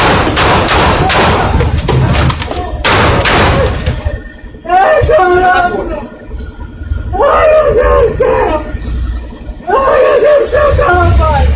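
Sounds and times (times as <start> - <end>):
gunshots fired at close range at a car wash: 0.0 - 4.3
people shouting: 0.6 - 6.3, 7.0 - 11.5
distressed wailing voices: 0.8 - 11.5.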